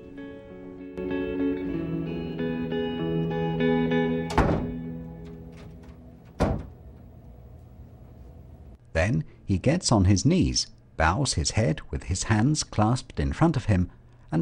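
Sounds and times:
sustained musical tones: 0.7s - 7.3s
dressing room door shutting with a solid thud: 4.3s - 7.0s
speech: 9.1s - 14.4s.

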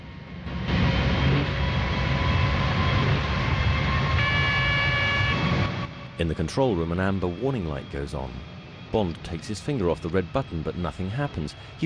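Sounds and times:
spinning centrifuge roaring: 0.4s - 6.9s
speech: 6.2s - 11.8s.

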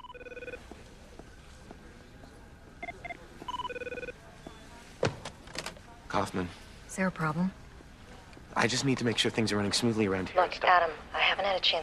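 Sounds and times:
electronic telephone ringing for an incoming call: 0.0s - 0.7s, 2.8s - 4.6s
speech: 6.2s - 7.6s, 8.6s - 11.8s.

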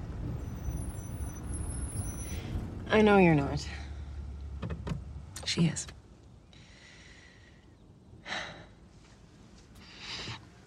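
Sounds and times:
car pulling over and stopping: 0.0s - 5.4s
low road and engine rumble with broadband hiss: 0.0s - 10.6s
speech: 2.9s - 3.8s, 5.6s - 6.0s.

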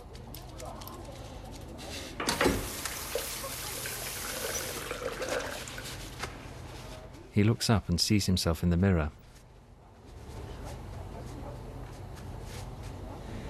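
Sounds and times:
water running while a man washes blood from his hands in a service station washroom: 2.4s - 6.0s
speech: 7.4s - 9.2s.

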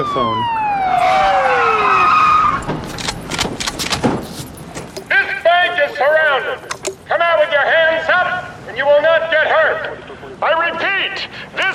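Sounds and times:
speech: 0.0s - 1.2s, 5.8s - 11.7s
police car tires squealing while skidding: 0.9s - 2.8s
sharp clattering impacts: 2.6s - 5.5s.

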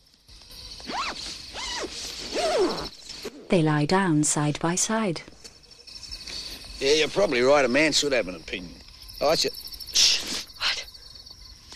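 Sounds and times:
side zipper of a sleeping bag being zipped up: 0.8s - 3.4s
speech: 3.5s - 5.3s, 6.8s - 9.6s.

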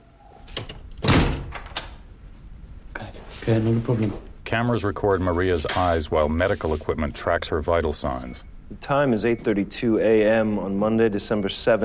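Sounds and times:
door thudding shut: 0.6s - 2.0s
speech: 3.4s - 11.8s.

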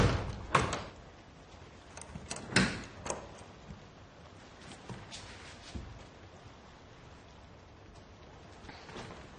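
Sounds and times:
wooden door creaking: 0.0s - 1.0s, 2.0s - 3.4s
faint shuffling: 4.2s - 7.2s, 7.8s - 9.3s.

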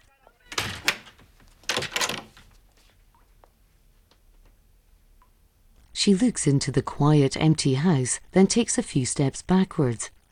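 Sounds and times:
house door being locked with a clattering burst: 0.5s - 2.5s
speech: 6.0s - 10.2s.

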